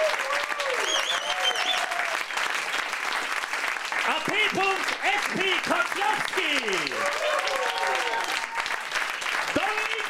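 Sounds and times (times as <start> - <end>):
dense audience applause: 0.0 - 10.0
faint whistles: 0.8 - 1.8.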